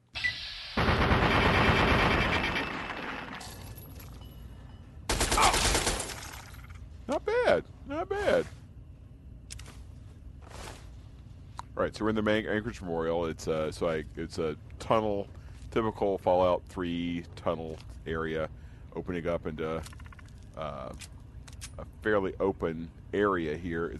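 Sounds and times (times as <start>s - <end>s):
10mm submachine gun automatic fire in a video game: 0.8s - 3.4s, 5.1s - 6.2s
speech: 7.1s - 8.6s, 11.9s - 20.0s, 20.6s - 21.2s, 21.8s - 23.9s.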